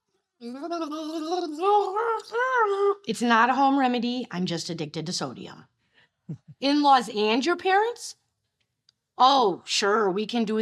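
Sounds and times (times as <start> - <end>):
person gargling turkey soup: 0.4 - 3.0
speech: 0.4 - 8.2, 9.2 - 10.5.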